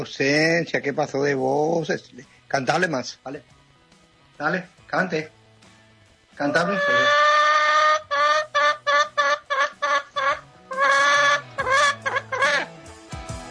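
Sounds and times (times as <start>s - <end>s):
speech: 0.0s - 3.6s, 4.4s - 5.4s, 6.4s - 7.2s
hen clucking: 6.4s - 12.7s.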